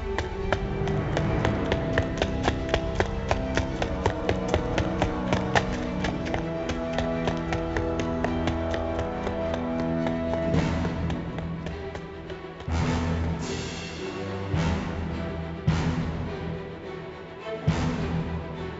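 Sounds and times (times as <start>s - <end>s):
person running down an empty hallway: 0.0s - 13.4s
steady tonal background: 0.0s - 18.7s.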